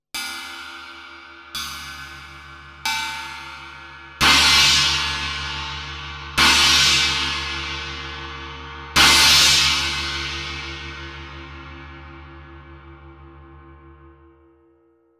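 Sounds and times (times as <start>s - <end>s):
Traditional 16 cymbals: 0.2s - 11.8s.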